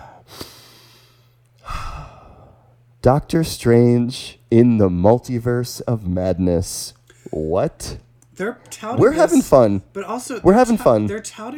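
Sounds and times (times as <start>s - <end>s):
deep human breath: 0.0s - 2.8s
speech: 3.0s - 11.5s.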